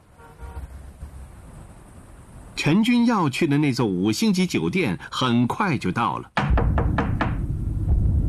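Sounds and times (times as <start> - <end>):
speech: 2.6 - 6.4
knocking on a hotel room door in a five-star hotel: 6.4 - 7.4
low rumble: 6.5 - 8.2.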